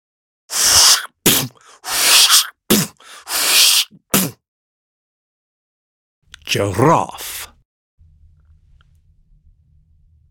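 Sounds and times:
voice imitating a steam-powered widget stamping machine hissing: 0.5 - 4.4
speech: 6.5 - 7.3.

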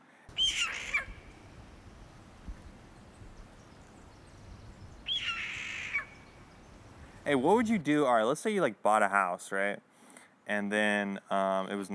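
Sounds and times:
jay calling: 0.3 - 7.6
faint hiss: 0.3 - 7.8
speech: 7.3 - 9.9, 10.5 - 11.9.

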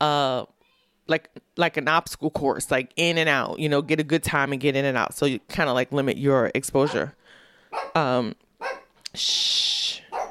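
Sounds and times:
speech: 1.1 - 7.2, 7.9 - 8.4, 9.1 - 10.1
dog barking: 7.7 - 8.0, 8.6 - 8.9
dog yelping: 7.7 - 8.0, 8.6 - 9.0.

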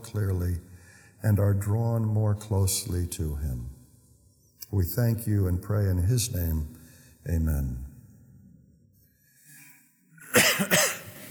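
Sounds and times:
speech: 0.1 - 3.8, 4.7 - 7.9
person coughing: 10.2 - 11.2.

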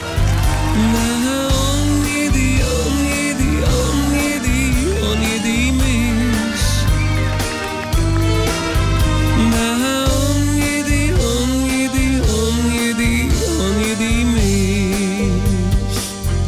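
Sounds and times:
pop song with male voice singing over bass and full band: 0.0 - 8.0, 9.0 - 16.4.

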